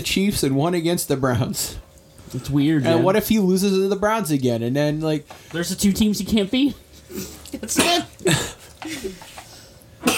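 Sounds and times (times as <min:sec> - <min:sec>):
speech: 0:00.0 - 0:09.2
person sneezing: 0:07.1 - 0:09.2.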